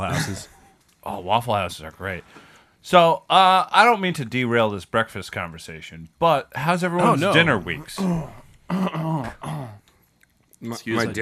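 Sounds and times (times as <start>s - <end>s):
throaty cough: 0.0s - 0.6s, 7.9s - 9.8s
speech: 0.0s - 9.8s, 10.6s - 11.1s.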